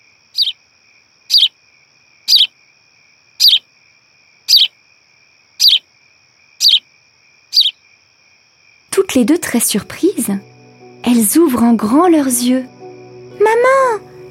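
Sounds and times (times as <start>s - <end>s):
bird call: 0.4s - 0.6s, 1.3s - 1.5s, 2.3s - 2.5s, 3.4s - 3.6s, 4.5s - 4.7s, 5.6s - 5.8s, 6.6s - 6.8s, 7.5s - 7.8s
speech: 9.0s - 10.5s, 11.2s - 12.8s.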